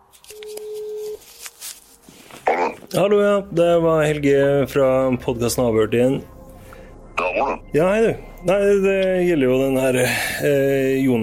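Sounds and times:
phone line noise: 0.3s - 1.2s
telephone ringing tone over a phone line: 0.4s - 1.2s
speech: 2.9s - 6.4s, 7.4s - 11.2s.

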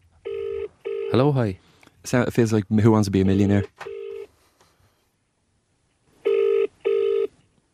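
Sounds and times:
outgoing phone call electronic ringing tone: 0.2s - 1.2s, 3.6s - 4.3s, 6.2s - 7.3s
speech: 1.1s - 3.9s.

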